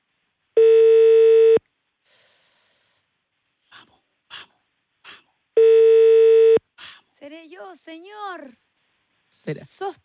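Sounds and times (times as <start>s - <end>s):
electronic telephone ring tone: 0.6s - 1.6s, 5.6s - 6.6s
speech: 7.2s - 8.6s, 9.4s - 10.0s.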